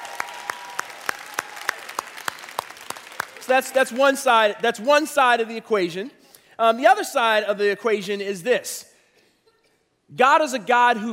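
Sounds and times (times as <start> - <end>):
audience applauding to vote on a question: 0.0 - 4.0
speech: 3.4 - 8.9, 10.1 - 11.1.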